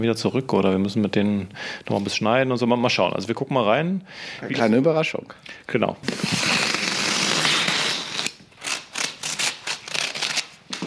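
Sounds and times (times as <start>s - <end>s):
speech: 0.0s - 6.6s
paper parcel wrapping rustling and crinkling as it is opened: 6.0s - 10.8s.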